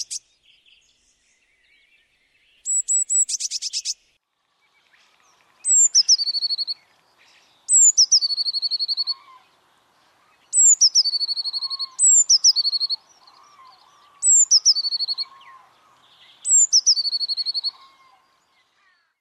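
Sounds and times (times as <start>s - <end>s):
Eurasian blue tit song with rapid rattling trill: 0.0s - 18.8s.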